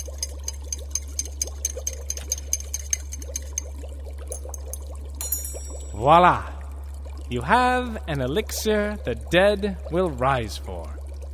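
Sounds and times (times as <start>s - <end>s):
brisk stirring of a liquid mixture: 0.0s - 5.1s
constant low electrical hum: 0.0s - 11.3s
speech: 6.0s - 6.5s, 7.3s - 11.0s.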